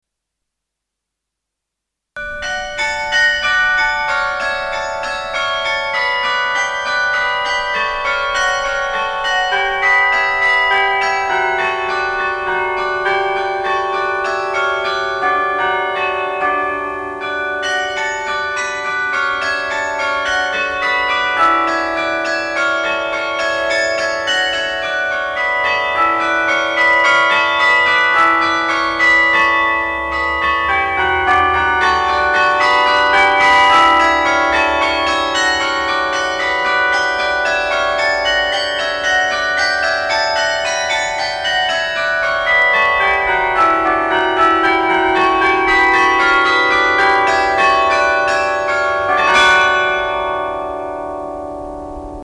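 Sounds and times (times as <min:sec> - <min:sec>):
bell music: 0:02.2 - 0:52.2.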